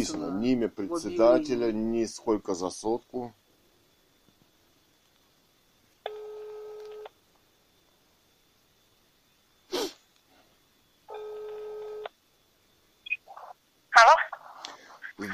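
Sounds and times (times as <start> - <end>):
speech: 0.0 - 3.4
telephone ringback tone: 6.1 - 7.0, 11.1 - 12.1
sharp breathy burst: 9.7 - 10.0, 14.4 - 15.2.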